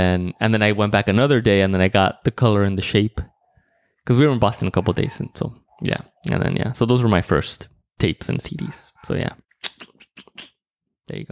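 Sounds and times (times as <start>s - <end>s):
speech: 0.0s - 3.3s, 4.0s - 9.4s, 11.1s - 11.3s
neighbor's dog yapping: 4.5s - 5.9s.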